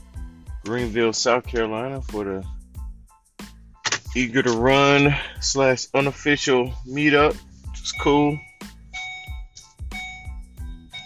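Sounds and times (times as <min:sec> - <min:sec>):
speech: 0:00.7 - 0:02.6, 0:04.2 - 0:08.5
electronic beeping from a device: 0:07.8 - 0:11.0.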